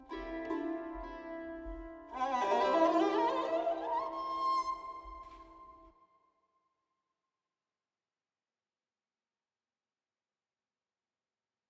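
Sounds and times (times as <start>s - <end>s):
sarangi playing in free time with wet effect: 0.0s - 5.9s.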